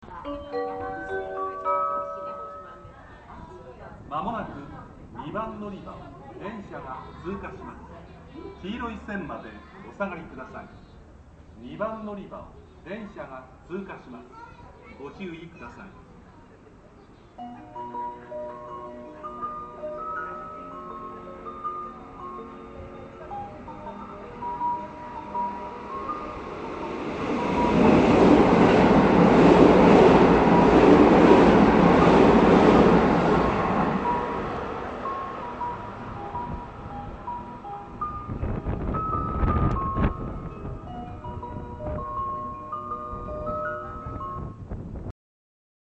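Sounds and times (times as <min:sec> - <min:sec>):
train departure bell at Sakurasyukugawa in Osaka: 0:00.1 - 0:03.8, 0:17.4 - 0:44.7.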